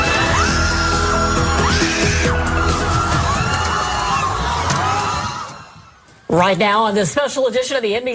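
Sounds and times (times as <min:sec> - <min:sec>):
crowd of protesters shouting in the street outside the federal building in Westwood: 0:00.0 - 0:06.1
protesters yelling and screaming: 0:00.0 - 0:06.2
speech: 0:06.3 - 0:08.1.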